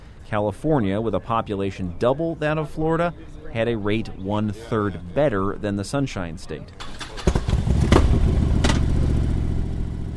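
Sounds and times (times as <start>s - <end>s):
speech: 0.3s - 7.0s
police escort motorcycle engine revving: 6.8s - 10.1s.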